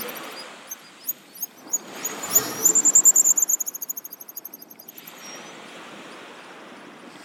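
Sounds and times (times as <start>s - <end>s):
pigeon guillemot Cepphus columba whistled trill: 0.0s - 5.5s
soft background rush: 0.0s - 7.1s.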